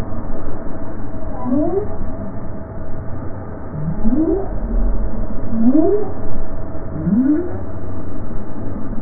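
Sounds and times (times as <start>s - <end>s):
right whale calling: 1.3s - 2.1s, 3.8s - 8.3s.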